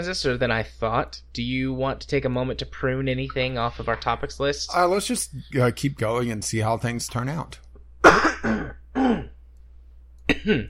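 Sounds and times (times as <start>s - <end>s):
speech: 0.0s - 8.6s, 10.4s - 10.6s
person clearing throat: 8.0s - 9.4s, 10.3s - 10.6s
person coughing: 8.0s - 9.4s, 10.3s - 10.6s.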